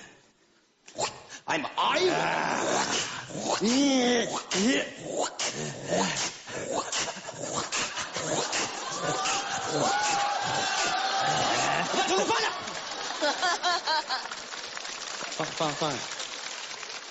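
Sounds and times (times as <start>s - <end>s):
person imitating the family dog with whimpering and yelping: 0.9s - 12.2s
speech: 1.5s - 6.3s, 15.4s - 16.2s
laughter: 6.9s - 14.5s.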